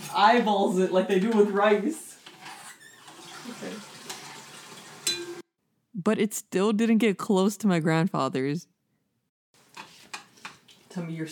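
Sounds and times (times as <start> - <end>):
speech: 0.1 - 2.1, 3.6 - 3.9, 6.0 - 8.7, 11.0 - 11.3
water running from a kitchen faucet: 2.8 - 5.4
sharp splash or clink: 5.0 - 5.4.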